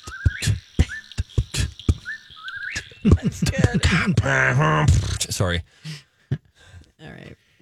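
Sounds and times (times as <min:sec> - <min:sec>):
whistled imitation of a whippoorwill call: 0:00.0 - 0:03.2
sharp percussive thumps like a vocal beat: 0:00.0 - 0:05.5
laughter: 0:02.8 - 0:06.5
speech: 0:03.0 - 0:06.0.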